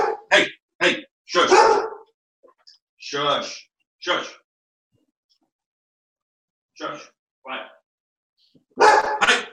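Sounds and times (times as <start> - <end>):
golden retrievers barking: 0.0 - 0.3, 1.4 - 2.1, 8.8 - 9.5.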